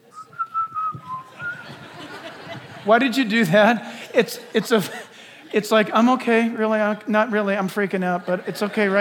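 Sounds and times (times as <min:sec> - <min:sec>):
person whistling a short melody while walking around scared: 0:00.1 - 0:01.8
laughter: 0:01.0 - 0:06.6, 0:07.8 - 0:09.0
speech: 0:02.8 - 0:09.0.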